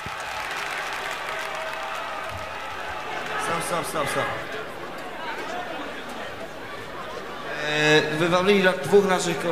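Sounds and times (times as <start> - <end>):
concert crowd applauding and cheering in a played-back live recording: 0.0 - 6.0
speech: 3.7 - 4.6, 7.7 - 9.4.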